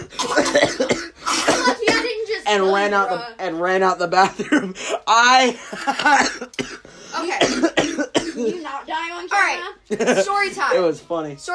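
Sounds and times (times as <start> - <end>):
seventh-grade girl imitating coughing with her voice: 0.0 - 2.3, 5.9 - 8.8
speech: 2.5 - 11.5.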